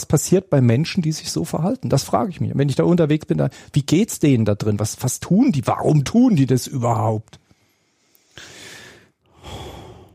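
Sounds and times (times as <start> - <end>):
speech: 0.0 - 7.4
person imitating heavy rasping breathing: 7.6 - 10.1.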